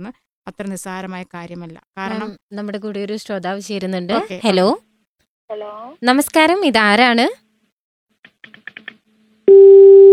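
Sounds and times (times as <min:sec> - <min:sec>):
speech: 0:00.0 - 0:04.9, 0:05.5 - 0:07.4, 0:09.5 - 0:10.1
telephone line low hum tone after a dropped call: 0:09.5 - 0:10.1.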